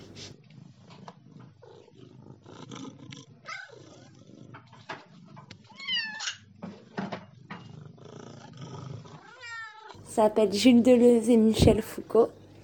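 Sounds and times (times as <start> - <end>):
domestic cat low rumbling purr: 0.0 - 12.6
several domestic cats meowing and crying at feeding: 3.0 - 6.6, 8.4 - 10.0
speech: 10.2 - 12.4.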